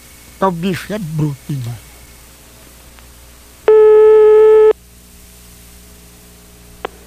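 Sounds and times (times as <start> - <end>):
telephone line hiss and hum: 0.0 - 7.0
speech: 0.4 - 1.9
telephone ringback tone during an outgoing call: 3.7 - 4.8.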